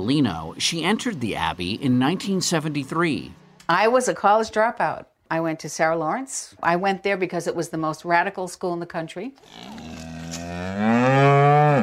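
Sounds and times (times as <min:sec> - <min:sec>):
speech: 0:00.0 - 0:11.8
cow mooing: 0:09.4 - 0:11.8.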